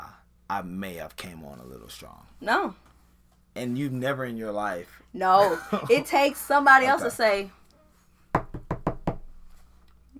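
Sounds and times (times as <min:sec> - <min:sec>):
speech: 0:00.5 - 0:02.9, 0:03.6 - 0:07.6
quick crisp knocks on a door: 0:08.3 - 0:09.4.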